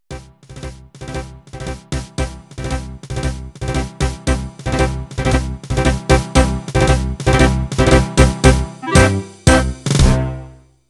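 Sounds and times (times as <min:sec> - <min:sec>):
pasodoble intro music: 0:00.1 - 0:10.6.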